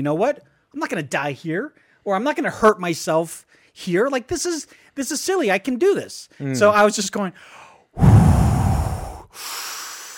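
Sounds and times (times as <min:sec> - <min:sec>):
speech: 0:00.0 - 0:08.5, 0:09.3 - 0:09.6
slow deliberate box breathing: 0:07.4 - 0:10.1.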